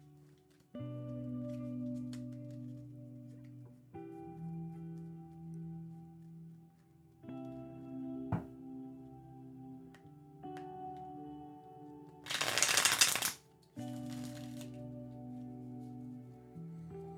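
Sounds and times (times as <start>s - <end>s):
soft sustained music: 0.0s - 17.1s
deck of tarot cards being riffled: 12.3s - 14.8s.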